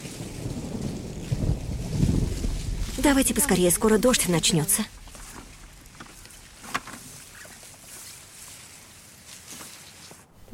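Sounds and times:
thunder rumbling overhead: 0:00.0 - 0:07.3
speech: 0:03.0 - 0:05.0.

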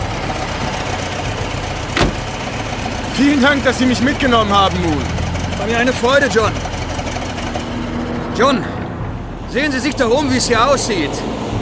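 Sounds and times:
American military supply truck engine rumbling: 0:00.0 - 0:11.6
speech: 0:03.2 - 0:06.7, 0:08.4 - 0:08.7, 0:09.5 - 0:11.4.

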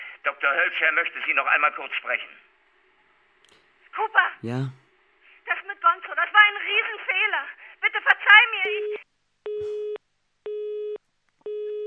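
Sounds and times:
speech: 0:00.2 - 0:02.5, 0:04.0 - 0:04.8, 0:05.8 - 0:09.0
telephone busy tone after the call line drops: 0:08.7 - 0:11.8.

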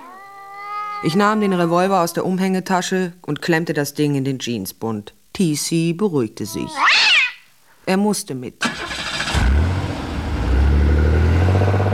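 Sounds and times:
speech: 0:01.0 - 0:07.0, 0:07.9 - 0:09.0
car engine roaring as the car speeds away: 0:08.7 - 0:11.9.

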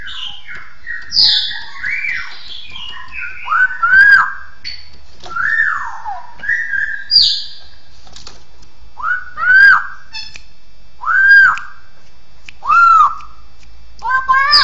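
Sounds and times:
bird song of whistled phrases: 0:00.0 - 0:07.6, 0:09.0 - 0:10.4, 0:11.0 - 0:11.8, 0:12.6 - 0:13.4, 0:14.3 - 0:14.6.

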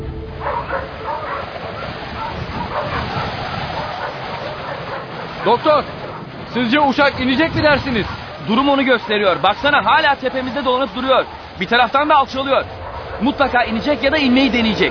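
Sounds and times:
sled dogs barking and yipping while being harnessed to a sled: 0:00.2 - 0:14.8
speech: 0:05.5 - 0:06.0, 0:06.5 - 0:14.8.

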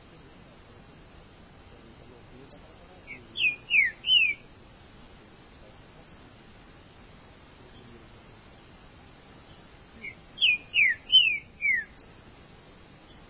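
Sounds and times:
green-winged saltator singing clear whistled notes: 0:02.6 - 0:04.5, 0:09.2 - 0:12.2.

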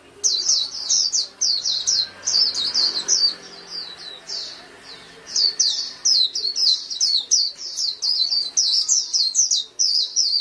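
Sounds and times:
Oriental magpie-robin singing: 0:00.0 - 0:10.4.

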